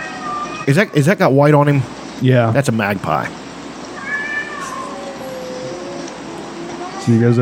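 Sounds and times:
cat meowing at a harassing magpie: 0.0 - 1.1, 3.9 - 7.4
steady hiss: 0.0 - 7.4
speech: 0.7 - 3.4, 7.1 - 7.4.

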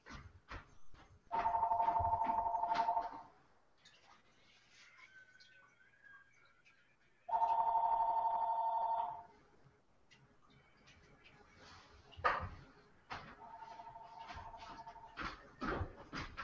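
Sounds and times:
telephone ringing with an electronic trill: 1.3 - 3.4, 7.3 - 9.3, 13.4 - 15.2.

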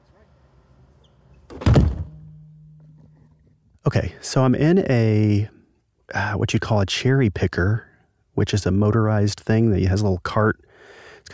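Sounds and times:
heavy chamber doors shutting with a deep thunk: 1.5 - 2.1
low steady hum: 1.7 - 10.5
speech: 3.8 - 10.6.

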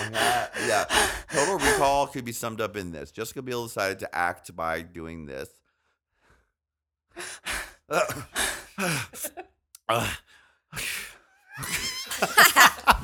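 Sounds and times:
person imitating heavy breathing: 0.0 - 2.1, 7.2 - 9.3
laughter: 0.0 - 2.6, 8.0 - 9.4, 11.6 - 13.0
speech: 0.1 - 5.6, 7.2 - 11.0, 11.6 - 13.0.

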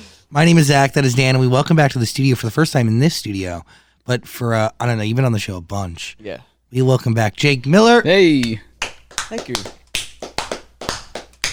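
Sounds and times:
speech: 0.3 - 8.7, 9.3 - 9.8
sharp hand claps in a studio: 8.4 - 11.5.

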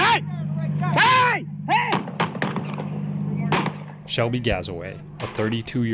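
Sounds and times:
man shouting in raised voice: 0.0 - 2.1
steady low hum: 0.0 - 5.9
rapid police gunfire in a store: 1.9 - 4.0
speech: 4.1 - 5.9.

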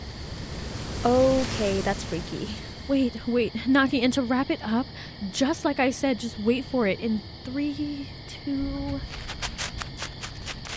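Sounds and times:
gust of wind: 0.0 - 3.7
speech: 1.0 - 9.4.

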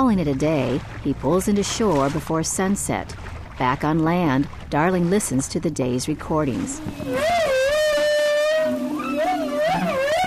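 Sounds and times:
speech: 0.0 - 7.5
whale song: 6.4 - 10.2.

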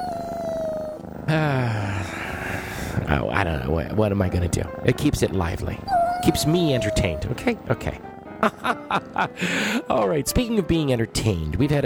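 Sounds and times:
chorus of meowing cats: 0.0 - 1.2, 5.6 - 7.6
speech: 1.3 - 2.2, 3.1 - 11.8.

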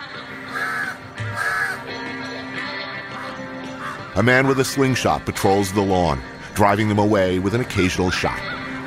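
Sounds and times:
crows cawing loudly and harshly: 0.4 - 1.9, 3.1 - 4.2
speech: 4.2 - 8.6.

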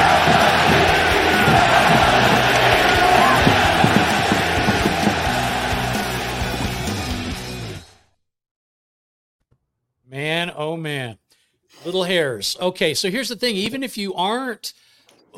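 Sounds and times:
large stadium crowd cheering and yelling: 0.0 - 7.3
speech: 10.6 - 11.2, 11.8 - 14.8.

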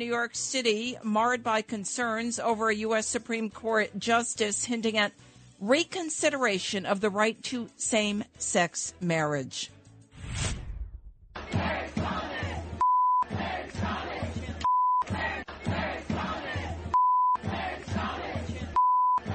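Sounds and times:
speech: 0.0 - 9.8
protest crowd shouting and chanting during arrests at abortion-rights demonstration: 11.4 - 19.3
steady flat electronic beep tones: 12.8 - 13.3, 14.6 - 15.1, 17.0 - 17.4, 18.8 - 19.2.

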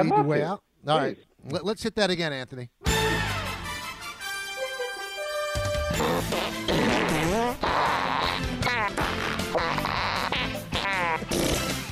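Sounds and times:
speech: 0.0 - 3.1
busy musical backing of a theme song: 2.8 - 11.9
fart noise sound effects in a theme song jingle: 5.9 - 11.9.

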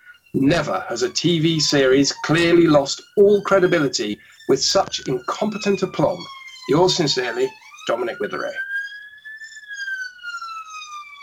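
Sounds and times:
police siren wailing: 0.0 - 11.2
speech: 0.3 - 8.7.

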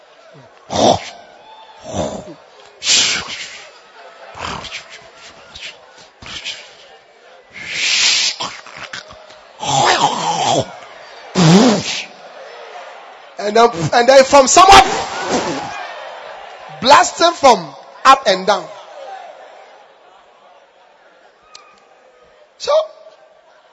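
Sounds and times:
laughter: 0.0 - 13.9, 14.5 - 16.8
speech: 0.3 - 1.1, 1.8 - 2.5, 13.5 - 15.5, 16.9 - 18.8
man imitating snoring with his voice: 0.7 - 1.2, 1.8 - 2.4, 4.4 - 4.9, 9.6 - 10.7.

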